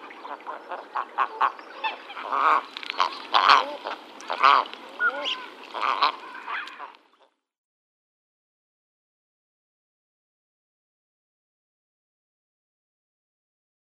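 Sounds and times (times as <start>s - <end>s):
female common eider calling: 0.8s - 7.0s.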